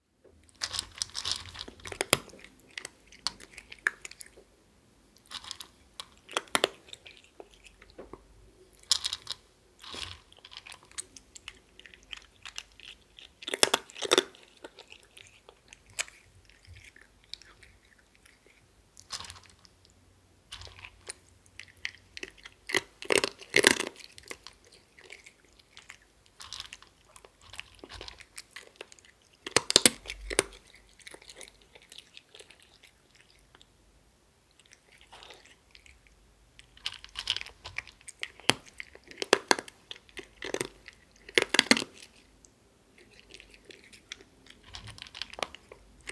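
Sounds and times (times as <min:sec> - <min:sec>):
cat eating dry food: 0:00.4 - 0:46.1.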